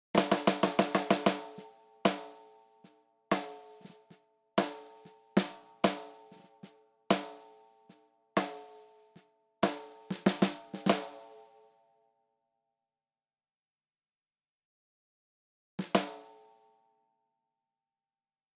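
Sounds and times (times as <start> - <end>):
snare drum: 0.2 - 2.5, 3.3 - 7.6, 8.4 - 11.4, 15.8 - 16.3.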